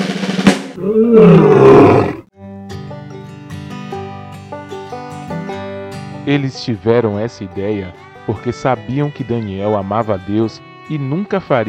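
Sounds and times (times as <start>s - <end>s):
speech: 0.8s - 2.0s, 6.3s - 11.6s
lion roaring: 0.8s - 2.3s
gentle melodic music: 2.4s - 11.6s.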